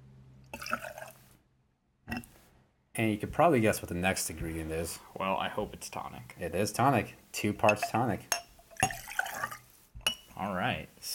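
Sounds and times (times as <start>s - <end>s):
tequila splashing into a glass: 0.5s - 1.2s, 7.7s - 9.7s
speech: 3.0s - 8.4s, 10.4s - 11.1s.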